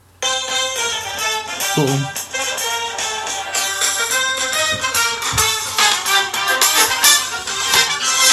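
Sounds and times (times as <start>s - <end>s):
30-second song preview playing from a phone: 0.2s - 8.3s
speech: 1.8s - 2.2s.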